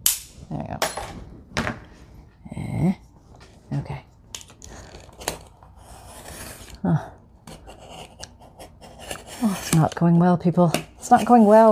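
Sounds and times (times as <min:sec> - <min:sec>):
speech: 0:00.5 - 0:00.9, 0:09.8 - 0:11.7
quiet scraping and rasping strokes cutting through a dull piece of material: 0:04.7 - 0:06.8, 0:07.4 - 0:10.0, 0:11.0 - 0:11.7.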